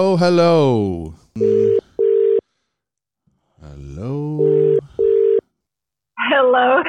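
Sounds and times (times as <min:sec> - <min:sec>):
speech: 0:00.0 - 0:01.6
buzzy electronic phone ring tones on a call to the United Arab Emirates: 0:01.4 - 0:02.4, 0:04.4 - 0:05.4.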